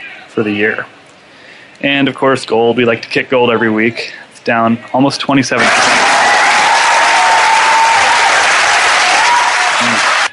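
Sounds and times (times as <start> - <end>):
speech: 0.4 - 1.0, 1.8 - 6.1
crowd cheering and applause sound effect: 5.6 - 10.3.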